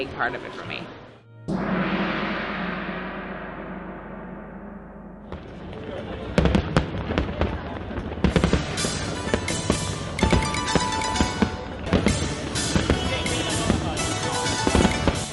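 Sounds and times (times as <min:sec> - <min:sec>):
speech: 0:00.0 - 0:01.6
big fireworks booming over Victoria Harbour in Hong Kong: 0:01.5 - 0:15.3
fireworks crackling and banging over Victoria Harbour in Hong Kong: 0:05.2 - 0:15.3.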